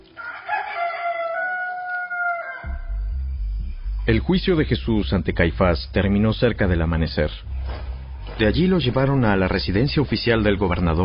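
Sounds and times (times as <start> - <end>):
rooster crowing: 0.1 - 3.0
speech: 4.1 - 7.5, 8.4 - 11.0.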